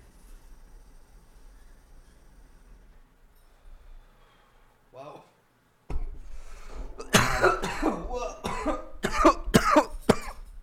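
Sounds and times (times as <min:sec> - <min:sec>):
person coughing into a microphone: 0:07.0 - 0:10.5.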